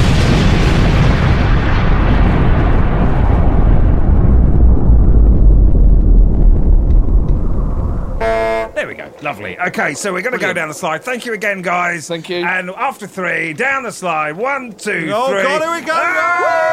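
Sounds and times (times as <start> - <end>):
atom bomb explosion sound effect: 0.0 - 9.2
speech: 9.4 - 16.7.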